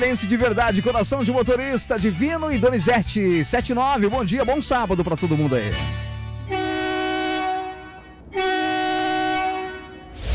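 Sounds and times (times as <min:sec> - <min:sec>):
speech: 0:00.0 - 0:06.1
bi-train heavy truck air horn blasts: 0:05.8 - 0:10.3.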